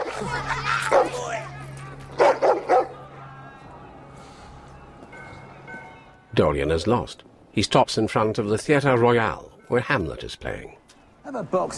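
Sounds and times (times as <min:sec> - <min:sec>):
laughter: 0:00.0 - 0:03.4
dog barking on a grubby street: 0:00.9 - 0:01.2, 0:02.2 - 0:03.0
speech: 0:06.4 - 0:11.7.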